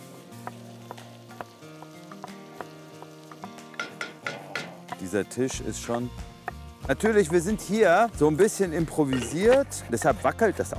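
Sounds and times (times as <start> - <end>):
chopped onions frying in a pan: 0.0 - 10.7
speech: 5.0 - 6.3, 6.9 - 10.7.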